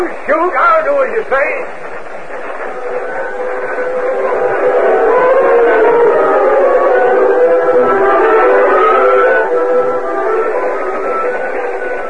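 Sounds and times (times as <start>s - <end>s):
speech: 0.0s - 2.0s
train rumbling with a steady loud mechanical roar: 0.0s - 12.0s
droning horn-like tone: 2.6s - 12.0s.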